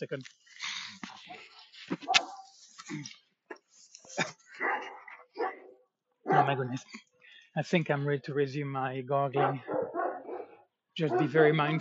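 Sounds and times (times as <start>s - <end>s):
speech: 0.0s - 2.1s, 2.9s - 3.2s, 6.4s - 9.8s, 11.0s - 11.7s
several dogs barking and yipping excitedly: 1.3s - 2.6s, 4.5s - 6.9s, 9.4s - 11.7s.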